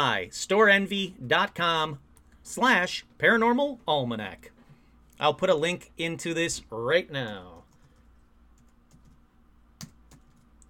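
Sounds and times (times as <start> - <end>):
speech: 0.0 - 4.5, 5.2 - 7.6
low hum: 0.0 - 10.6
typing on a computer keyboard: 8.6 - 9.2, 9.8 - 10.6.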